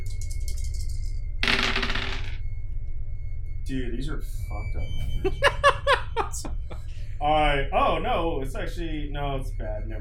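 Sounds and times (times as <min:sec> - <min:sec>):
four dice clattering across a hard table in a tabletop game: 0:00.1 - 0:02.4
speech: 0:03.7 - 0:09.9
laughter: 0:05.2 - 0:07.0.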